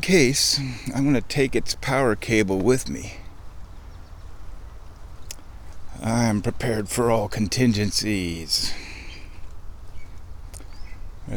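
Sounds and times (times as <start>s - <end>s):
speech: 0.0s - 3.2s, 6.0s - 8.9s
low outdoor rumble: 0.0s - 11.3s
thin oddly pitched bird chirps: 1.8s - 6.0s, 7.5s - 11.3s.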